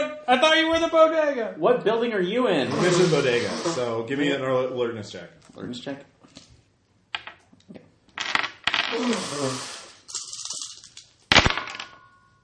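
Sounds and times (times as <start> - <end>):
speech: 0.3 - 6.4, 8.9 - 9.8
dice rattling and clattering across a hard surface: 8.2 - 12.0.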